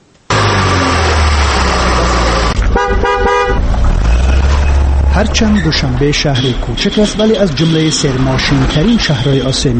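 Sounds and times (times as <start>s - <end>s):
street traffic in Dushanbe Tajikistan: 0.3s - 9.7s
car horn honking: 2.1s - 3.7s, 5.6s - 9.6s
speech: 5.2s - 9.7s.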